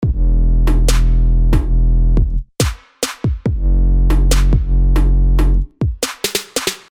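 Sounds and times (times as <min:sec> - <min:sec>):
full drum loop in E: 0:00.0 - 0:06.9.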